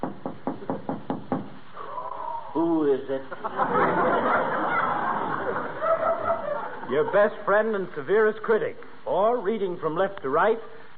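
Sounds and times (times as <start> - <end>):
firm knocks on a wooden door: 0.0 - 1.5
speech: 2.6 - 4.6, 6.9 - 10.9
laughter: 3.2 - 7.6.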